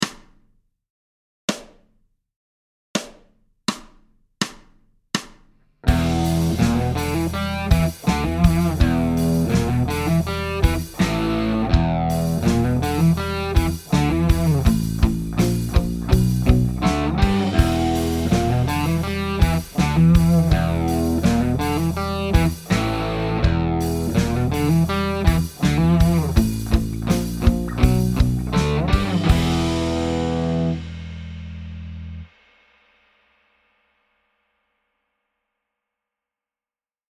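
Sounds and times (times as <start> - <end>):
guitar riff: 5.9 - 32.2.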